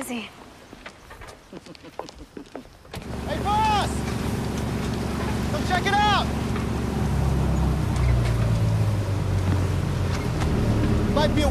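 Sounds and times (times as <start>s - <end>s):
boat engine droning on the water: 3.0s - 11.5s
speech: 5.7s - 6.4s, 11.2s - 11.5s.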